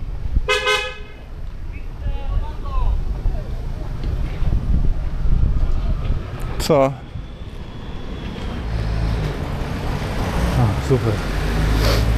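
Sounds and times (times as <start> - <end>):
low rumble of street traffic: 0.0 - 12.1
wind: 0.0 - 12.1
car horn honk: 0.5 - 1.2
speech: 6.7 - 7.0, 10.9 - 11.4.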